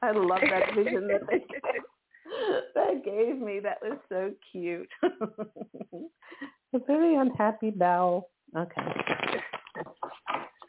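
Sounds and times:
speech: 0:00.0 - 0:01.9, 0:02.9 - 0:06.1, 0:06.7 - 0:09.5
laughter: 0:00.2 - 0:01.8, 0:04.9 - 0:06.5, 0:09.6 - 0:10.5
deck of tarot cards being shuffled: 0:08.8 - 0:10.6.

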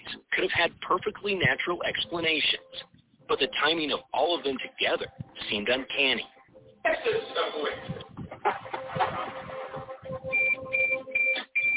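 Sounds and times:
speech: 0:00.5 - 0:02.7, 0:03.3 - 0:07.9
drone error beep failing to connect: 0:08.8 - 0:11.7.

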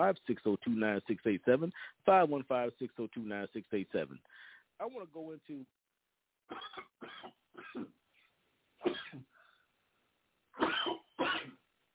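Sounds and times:
speech: 0:00.0 - 0:05.8, 0:06.5 - 0:08.0, 0:08.8 - 0:09.3
person with a dry throat coughing: 0:06.5 - 0:08.0, 0:08.8 - 0:09.3, 0:10.6 - 0:11.6.

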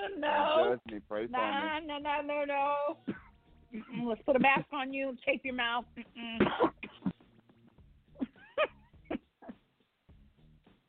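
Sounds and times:
speech: 0:00.1 - 0:07.0
person clearing throat: 0:03.1 - 0:04.0, 0:06.4 - 0:07.2
person coughing: 0:03.1 - 0:04.6, 0:06.4 - 0:07.2.

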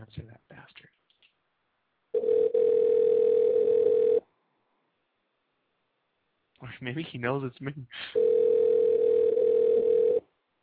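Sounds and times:
speech: 0:00.1 - 0:01.0, 0:06.8 - 0:08.3
telephone call tone before a voicemail greeting: 0:02.2 - 0:04.2, 0:08.2 - 0:10.2.

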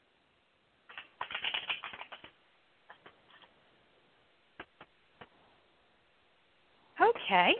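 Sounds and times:
soft taps and snaps of a tarot deck being handled: 0:00.9 - 0:03.5, 0:04.6 - 0:05.3
tarot cards being shuffled for a tarot reading: 0:00.9 - 0:03.5.

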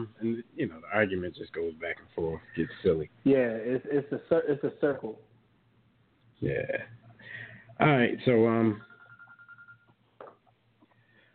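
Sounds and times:
speech: 0:00.0 - 0:05.3, 0:06.4 - 0:07.0, 0:07.8 - 0:08.9
low hum: 0:00.0 - 0:11.3
faint electronic phone ringing: 0:08.7 - 0:10.0.

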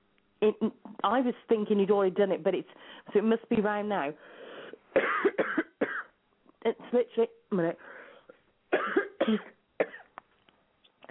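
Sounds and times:
speech: 0:00.4 - 0:05.8, 0:06.6 - 0:07.9, 0:08.7 - 0:09.6
person coughing: 0:05.0 - 0:06.1, 0:08.7 - 0:10.1.

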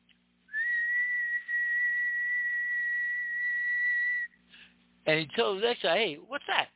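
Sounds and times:
shrill steady whistle blowing: 0:00.5 - 0:04.4
speech: 0:05.1 - 0:06.7.

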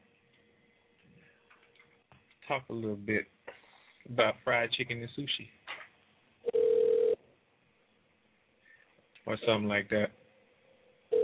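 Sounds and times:
speech: 0:02.5 - 0:03.4, 0:04.0 - 0:05.6, 0:09.3 - 0:10.2
telephone dial tone as a call is placed: 0:06.5 - 0:07.2.

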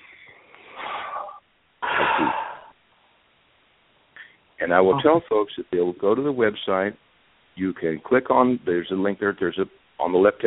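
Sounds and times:
big breath in and out during a tapping exercise: 0:00.0 - 0:02.8
speech: 0:04.6 - 0:07.0, 0:07.6 - 0:10.4.

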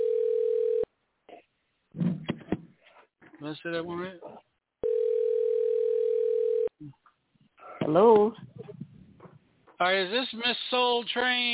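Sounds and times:
telephone dial tone while a number is being dialed: 0:00.0 - 0:00.9, 0:04.8 - 0:06.7
speech: 0:03.4 - 0:04.4, 0:07.9 - 0:08.6, 0:09.8 - 0:11.5.

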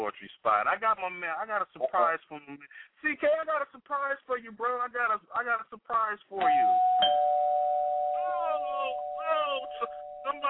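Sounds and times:
speech: 0:00.0 - 0:07.6, 0:08.3 - 0:10.4
electronic doorbell chime: 0:06.4 - 0:10.4.

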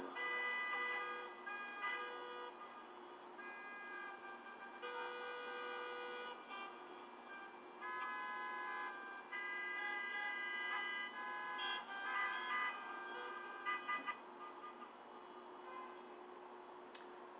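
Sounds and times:
car horns honking at different pitches: 0:00.0 - 0:16.2
busy street traffic: 0:00.0 - 0:17.3.

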